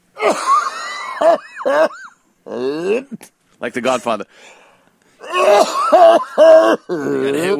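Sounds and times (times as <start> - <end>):
gravelly phlegmy hacking throat-clearing cough: 0.2 - 2.1, 5.3 - 6.8
speech: 1.2 - 4.6, 5.3 - 7.5
laughter: 5.3 - 7.5.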